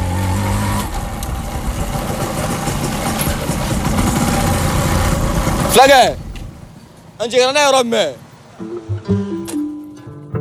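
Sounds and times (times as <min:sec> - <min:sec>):
motorcycle engine idling while being parked: 0:00.0 - 0:07.0
speech: 0:05.8 - 0:06.2, 0:07.2 - 0:09.2.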